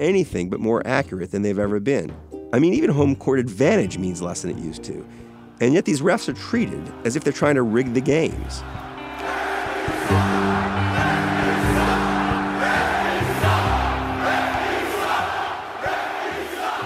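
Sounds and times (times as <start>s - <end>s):
speech: 0.0s - 8.8s
huge arena crowd roaring and screaming: 6.6s - 16.8s.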